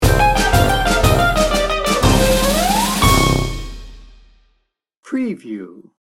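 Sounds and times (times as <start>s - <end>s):
musical sting bumper: 0.0s - 4.2s.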